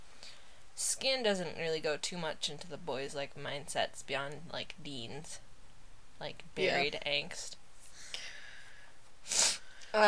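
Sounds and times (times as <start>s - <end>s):
speech: 1.0s - 5.4s, 6.2s - 7.6s, 9.3s - 10.0s
aborted sneeze with sharp sniffing inhale: 7.9s - 9.9s.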